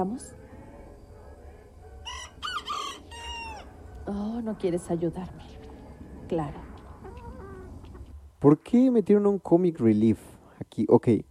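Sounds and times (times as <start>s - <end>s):
speech: 0.0s - 0.4s, 4.1s - 5.5s, 6.3s - 6.7s, 8.4s - 11.2s
low steady hum: 0.0s - 11.2s
rooster crowing: 0.7s - 4.0s, 6.7s - 8.0s.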